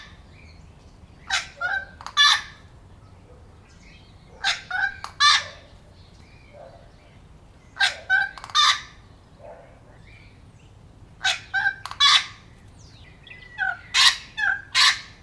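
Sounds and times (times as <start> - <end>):
wattlebird cackling calls: 1.2 - 2.7, 4.3 - 5.7, 7.8 - 9.0, 11.2 - 12.5, 13.4 - 15.2.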